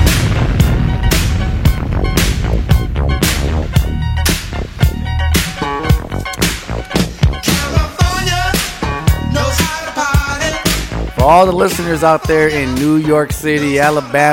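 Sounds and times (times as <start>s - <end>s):
loud, booming explosions: 0.0s - 9.6s
dense, tonal musical backdrop: 0.0s - 13.8s
speech: 11.3s - 14.3s.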